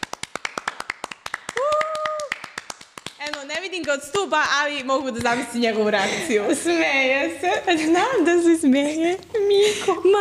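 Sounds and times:
applause for a colleague: 0:00.0 - 0:05.5
speech: 0:03.4 - 0:10.1.

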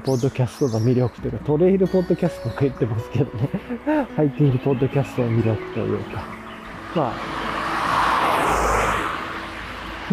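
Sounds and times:
speech: 0:00.0 - 0:07.4
traffic roar: 0:02.0 - 0:10.1
vehicle passing: 0:03.7 - 0:10.1.

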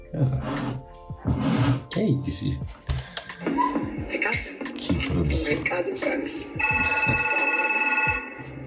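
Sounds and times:
speech: 0:00.2 - 0:00.8, 0:02.0 - 0:02.8, 0:03.4 - 0:04.5, 0:05.1 - 0:07.4
telephone ringing with a steady electronic tone: 0:03.4 - 0:08.6.

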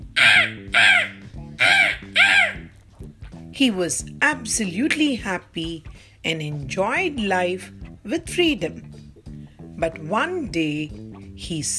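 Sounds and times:
crow cawing: 0:00.0 - 0:02.7
speech: 0:03.6 - 0:08.9, 0:09.8 - 0:11.7.

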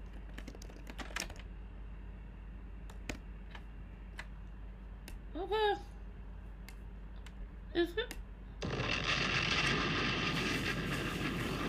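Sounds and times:
typing on a computer keyboard: 0:00.0 - 0:01.5
steady low hum: 0:00.0 - 0:11.6
speech: 0:05.4 - 0:05.9, 0:07.7 - 0:08.2.

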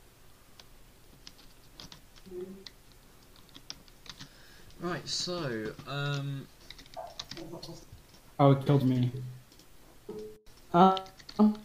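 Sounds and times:
typing on a computer keyboard into a game console: 0:01.2 - 0:04.3, 0:05.6 - 0:07.8, 0:10.9 - 0:11.6
speech: 0:04.8 - 0:06.6, 0:07.4 - 0:09.4, 0:10.1 - 0:11.6.

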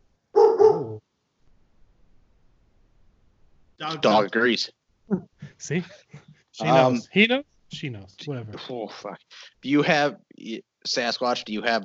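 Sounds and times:
dog barking: 0:00.4 - 0:01.0
speech: 0:03.8 - 0:11.8.

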